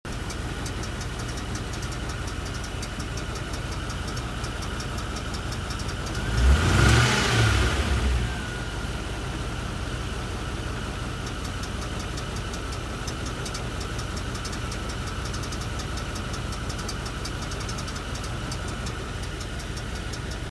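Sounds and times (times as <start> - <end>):
Rover Discovery II engine running: 0.0 - 20.4.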